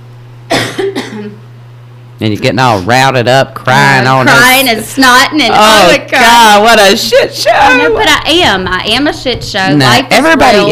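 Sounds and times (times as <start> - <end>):
person coughing: 0.5 - 1.4
speech: 0.8 - 1.5, 2.2 - 10.6.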